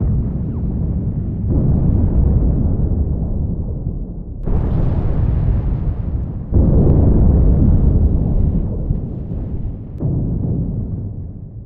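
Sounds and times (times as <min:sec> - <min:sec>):
space battle ambience: 0:00.0 - 0:11.6.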